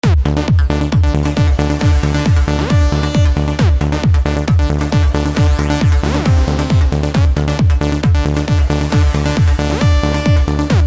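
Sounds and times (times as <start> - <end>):
modern trance music: 0.0 - 10.8.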